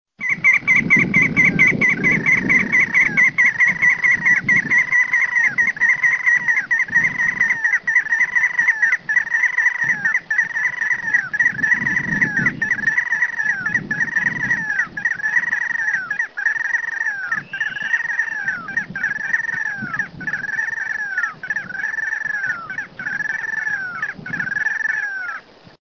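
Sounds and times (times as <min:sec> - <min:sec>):
Mustelirallus albicollis ash-throated crake calling: 0:00.2 - 0:25.6.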